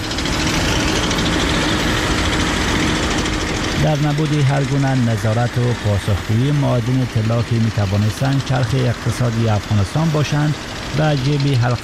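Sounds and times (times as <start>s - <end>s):
heavy mining machinery engines roaring: 0.0s - 11.8s
speech: 3.8s - 11.8s.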